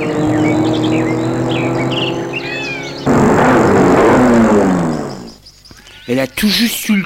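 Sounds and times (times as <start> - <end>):
sports car engine speeding along the road: 0.0 - 5.5
birds chirping: 0.0 - 7.0
speech: 6.1 - 7.0.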